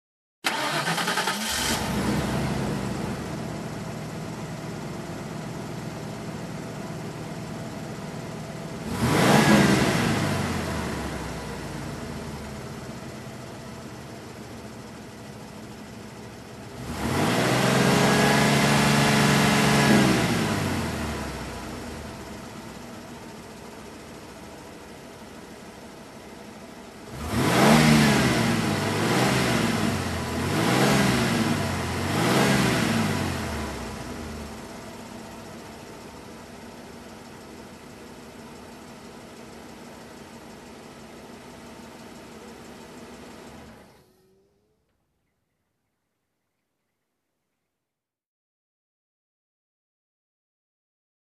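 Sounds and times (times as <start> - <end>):
car engine ignition and rev up: 0.4 - 24.7, 26.5 - 36.6.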